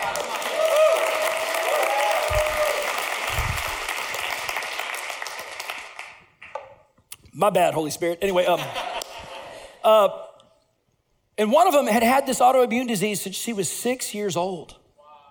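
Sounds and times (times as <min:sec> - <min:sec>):
church audience cheering: 0:00.0 - 0:05.6
church audience applauding: 0:00.0 - 0:06.5
speech: 0:07.4 - 0:08.9, 0:09.8 - 0:10.2, 0:11.4 - 0:14.8
laughter: 0:08.5 - 0:09.8.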